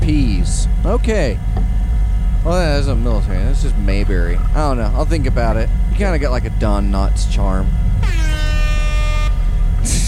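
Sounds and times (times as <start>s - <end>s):
low rumbling hum: 0.0s - 10.0s
speech: 0.1s - 1.6s, 2.4s - 8.2s, 9.8s - 10.0s
loud blaring air horn blast: 7.9s - 10.0s.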